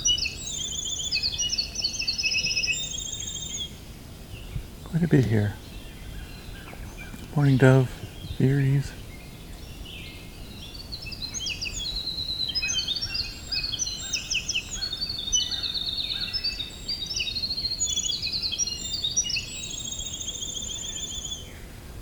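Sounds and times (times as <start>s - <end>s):
gray catbird calls: 0.0s - 21.7s
outdoor noise: 0.0s - 22.0s
speech: 5.0s - 5.6s, 7.4s - 9.0s.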